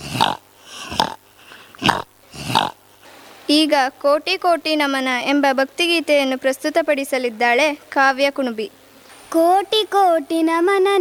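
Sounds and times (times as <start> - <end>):
pig grunting: 0.0 - 1.2, 1.8 - 2.8
speech: 3.5 - 10.9.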